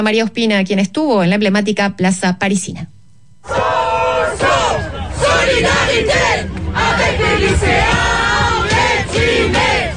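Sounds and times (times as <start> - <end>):
speech: 0.0 - 3.8
crowd of university students chanting slogans at a street protest: 3.4 - 9.9.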